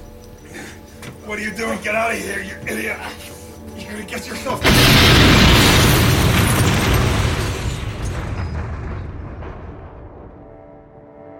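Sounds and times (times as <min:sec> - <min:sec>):
speech: 0:01.3 - 0:05.3
loud explosion: 0:04.6 - 0:10.9.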